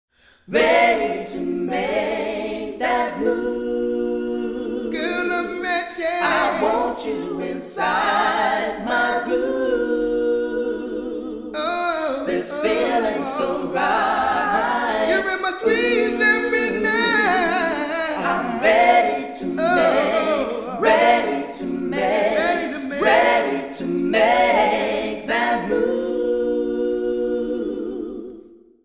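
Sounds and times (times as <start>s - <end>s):
vocal group singing with plate reverb: 0.2s - 28.8s.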